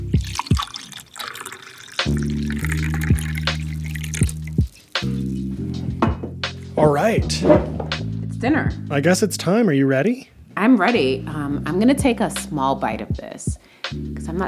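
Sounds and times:
wine pouring and dripping: 0:00.1 - 0:05.6
speech: 0:07.0 - 0:07.8, 0:08.4 - 0:14.4.

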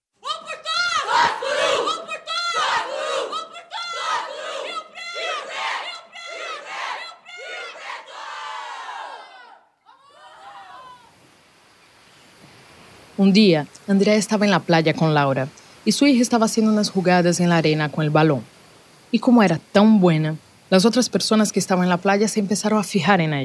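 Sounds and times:
large crowd of football fans chanting a team motto in unison at a stadium: 0:00.2 - 0:11.1
speech: 0:13.2 - 0:23.4.

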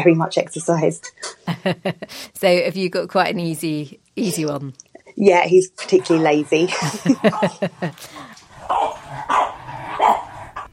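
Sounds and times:
speech: 0:00.0 - 0:08.4
laughter: 0:01.5 - 0:02.4, 0:06.6 - 0:08.4
puppies yapping and barking: 0:06.8 - 0:10.7.

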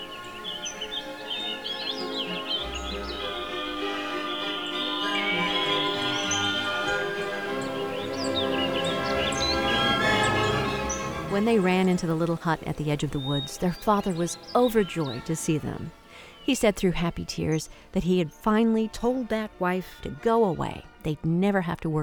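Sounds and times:
birds singing and chirping: 0:00.0 - 0:20.9
steady sustained tonal background: 0:00.0 - 0:22.0
speech: 0:11.4 - 0:22.0.

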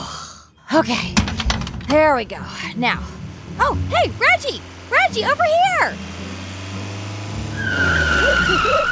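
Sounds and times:
speech: 0:00.7 - 0:06.1, 0:07.7 - 0:08.9
car engine rumbling as it pulls up: 0:00.8 - 0:08.9
car tires screeching as it slides to a stop: 0:02.5 - 0:08.9.

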